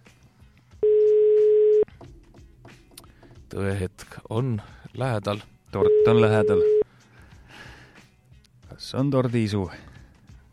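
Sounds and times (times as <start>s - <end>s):
telephone ringback tone during outgoing call: 0.8s - 1.9s, 5.8s - 6.8s
speech: 3.6s - 6.8s, 8.8s - 9.9s.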